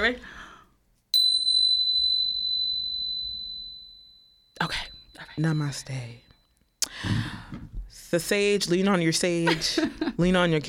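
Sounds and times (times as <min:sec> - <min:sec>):
speech: 0:00.0 - 0:00.4, 0:04.6 - 0:06.2, 0:08.1 - 0:10.6
small bell ringing: 0:01.1 - 0:06.8.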